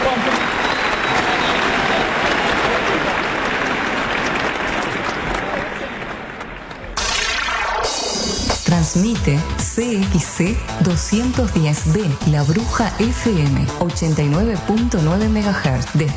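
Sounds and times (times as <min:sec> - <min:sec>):
large audience applauding: 0:00.0 - 0:08.0
speech: 0:09.0 - 0:16.1.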